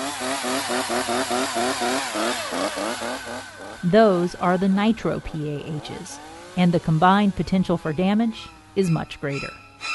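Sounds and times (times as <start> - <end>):
chainsaw running and revving: 0.0 - 8.9
speech: 0.7 - 9.9.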